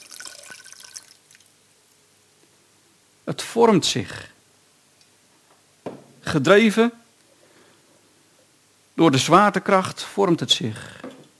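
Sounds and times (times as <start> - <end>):
water poured as a demonstration of how water flows: 0.0 - 1.6
speech: 3.3 - 4.4, 6.3 - 7.0, 9.0 - 11.0.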